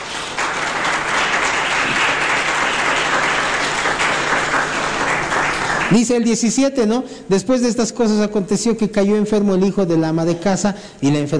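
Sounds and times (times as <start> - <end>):
crowd applauding loudly: 0.0 - 6.4
speech: 5.9 - 11.3.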